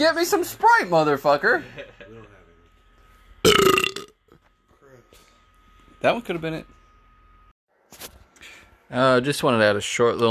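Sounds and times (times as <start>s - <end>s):
speech: 0.0s - 2.1s, 6.0s - 6.8s, 8.9s - 10.2s
burp: 3.5s - 4.2s.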